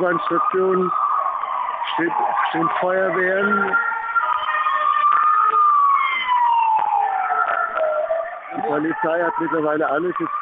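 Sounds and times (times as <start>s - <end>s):
speech: 0.0s - 1.1s, 1.9s - 4.0s, 8.7s - 10.3s
ambulance siren wailing near a metro station: 0.0s - 10.3s.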